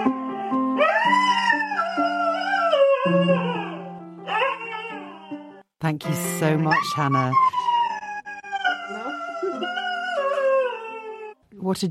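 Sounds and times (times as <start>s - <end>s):
pet dog howling in long wavering notes: 0.8s - 5.6s, 6.7s - 11.4s
speech: 5.9s - 7.7s.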